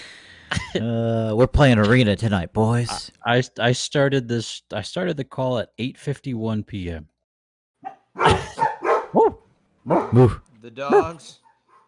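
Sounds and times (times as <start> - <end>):
speech: 0.5 - 7.1, 7.8 - 11.4
dogs barking and yipping: 7.8 - 11.8.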